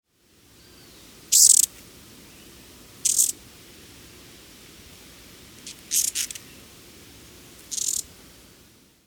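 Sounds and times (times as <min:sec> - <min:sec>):
glittering-bellied emerald hummingbird: 0:00.6 - 0:08.6.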